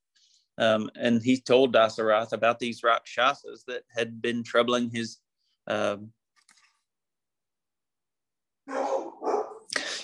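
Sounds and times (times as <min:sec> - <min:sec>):
speech: 0:00.6 - 0:06.2
dog barking: 0:08.7 - 0:09.7.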